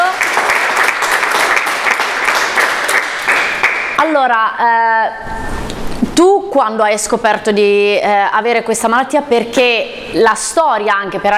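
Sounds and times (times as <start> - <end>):
audience applause: 0.0 - 4.0
speech: 4.2 - 5.6, 6.2 - 11.3.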